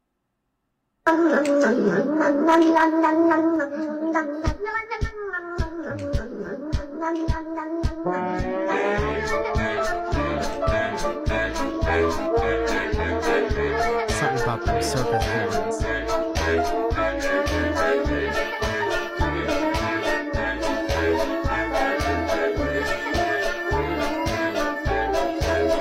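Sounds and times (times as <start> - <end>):
speech: 1.1 - 10.0, 14.4 - 18.4
ensemble playing a bouncy novelty tune over a punchy beat: 8.2 - 25.8.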